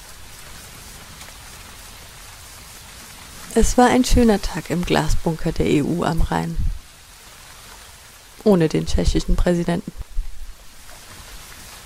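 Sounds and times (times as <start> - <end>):
steady rain spattering on a surface: 0.0 - 11.8
speech: 3.6 - 6.7, 8.4 - 10.0.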